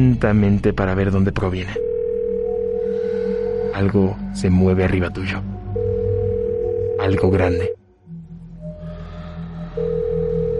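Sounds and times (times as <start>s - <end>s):
speech: 0.0s - 1.9s, 3.7s - 5.5s, 7.1s - 7.8s
mobile phone ringing: 1.8s - 3.7s, 5.8s - 7.8s.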